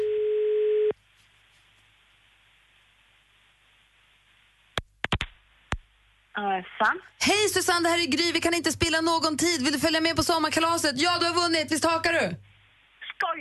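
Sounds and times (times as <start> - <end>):
telephone ringing tone while placing a call: 0.0 - 0.9
quiet phone line hiss: 0.0 - 1.0
speech: 6.5 - 12.5.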